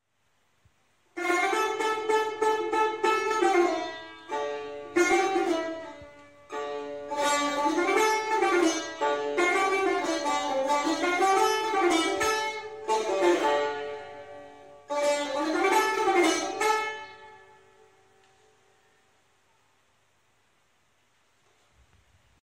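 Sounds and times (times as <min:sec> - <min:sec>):
tar instrument playing: 0:01.2 - 0:18.5.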